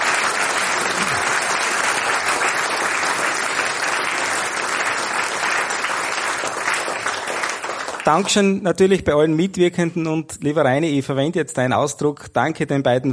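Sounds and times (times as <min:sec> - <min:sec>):
sustained applause from a large audience: 0:00.0 - 0:08.6
speech: 0:08.1 - 0:13.1.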